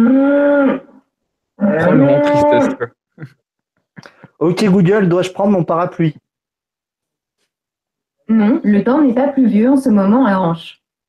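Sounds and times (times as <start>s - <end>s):
cow mooing: 0.0s - 1.0s, 1.6s - 2.9s
speech: 1.8s - 3.4s, 4.4s - 6.2s, 8.3s - 10.8s.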